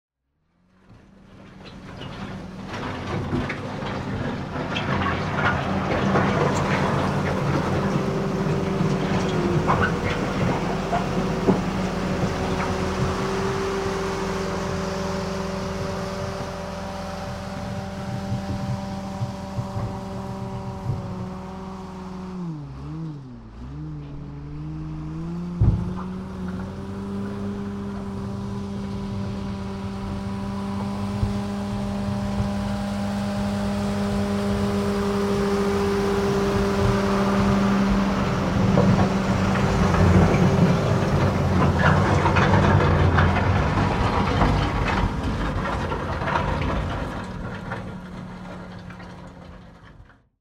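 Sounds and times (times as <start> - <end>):
tractor front end loader: 0.5 - 50.4.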